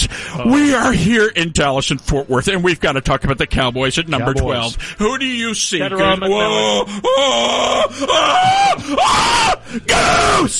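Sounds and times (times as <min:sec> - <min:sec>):
breaths between screams: 0:00.0 - 0:00.4, 0:04.7 - 0:05.0, 0:09.6 - 0:09.9
speech: 0:00.1 - 0:10.5
person screaming excitedly: 0:06.4 - 0:10.5.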